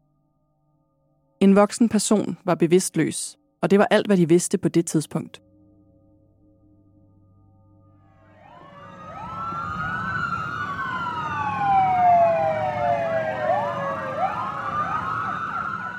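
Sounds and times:
speech: 0:01.4 - 0:05.5
police car siren wailing during emergency response: 0:08.3 - 0:15.9
low traffic rumble: 0:08.6 - 0:15.9.

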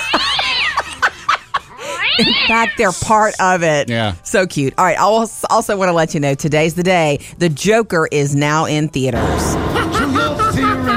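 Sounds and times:
cat meowing: 0:00.0 - 0:00.9, 0:01.8 - 0:02.9
laughter: 0:00.0 - 0:02.5, 0:09.6 - 0:10.9
speech: 0:02.2 - 0:09.7.

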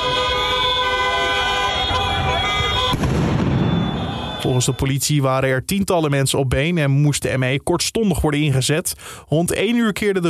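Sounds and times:
car horns blaring in a busy street: 0:00.0 - 0:04.9
rowdy crowd noise during street unrest: 0:00.0 - 0:04.9
loud firework bang: 0:01.9 - 0:04.5
speech: 0:04.4 - 0:10.2.

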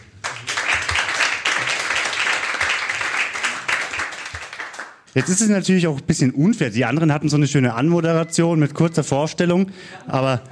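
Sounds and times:
small crowd clapping: 0:00.0 - 0:05.5
speech: 0:05.2 - 0:10.5.

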